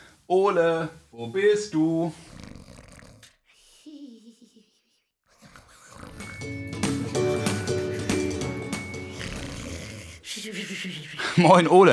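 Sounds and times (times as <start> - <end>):
speech: 0.3 - 2.4, 10.4 - 11.9
person snoring: 2.2 - 3.4, 5.3 - 6.5, 7.1 - 11.4
busy bright music: 6.2 - 10.0
laughter: 10.3 - 11.8.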